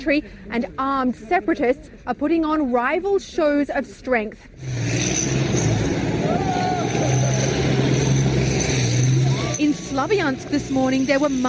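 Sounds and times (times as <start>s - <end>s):
speech: 0.0s - 5.0s, 10.0s - 11.4s
tank doing donuts on a street engine rumbling: 4.6s - 11.4s.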